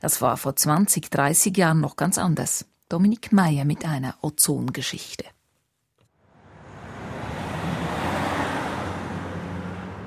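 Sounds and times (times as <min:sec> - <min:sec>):
speech: 0:00.0 - 0:05.4
stop-and-go city traffic on a busy street: 0:06.2 - 0:10.0.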